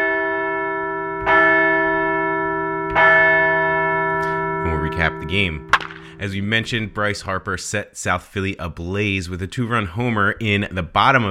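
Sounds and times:
large bell ringing: 0:00.0 - 0:06.5
speech: 0:05.0 - 0:11.2.

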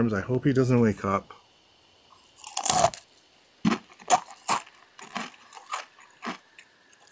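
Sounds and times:
speech: 0:00.0 - 0:01.4
crunching spicy chips: 0:02.2 - 0:07.1.

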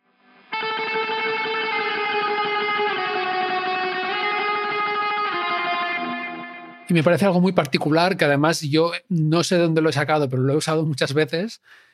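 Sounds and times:
electric guitar tremolo picking drenched in echo: 0:00.0 - 0:07.0
speech: 0:06.9 - 0:11.9.

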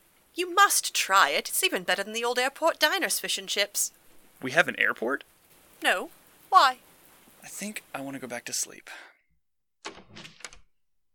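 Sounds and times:
speech: 0:00.4 - 0:09.1
front door of an estate house opening: 0:09.8 - 0:10.7.

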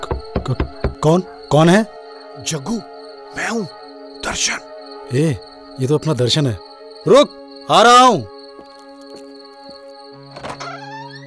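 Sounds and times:
speech: 0:00.5 - 0:08.3
door unlatching and opening with clicks and a rattling clunk: 0:10.3 - 0:11.2.

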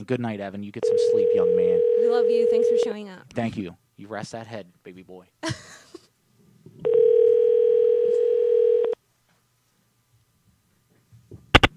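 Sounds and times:
speech: 0:00.0 - 0:05.9
phone ringback tone for an unanswered call: 0:00.8 - 0:02.9, 0:06.8 - 0:09.0.

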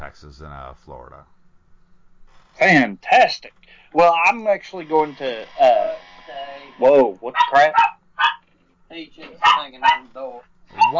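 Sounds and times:
speech: 0:00.1 - 0:01.4, 0:02.6 - 0:08.0, 0:08.9 - 0:10.9
dog barking: 0:07.2 - 0:08.4, 0:09.2 - 0:10.9.

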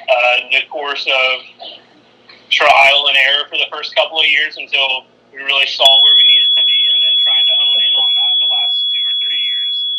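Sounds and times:
speech: 0:00.3 - 0:01.8, 0:02.5 - 0:06.4
hotel smoke alarm emitting a continuous piercing high-pitched tone: 0:05.8 - 0:09.9.

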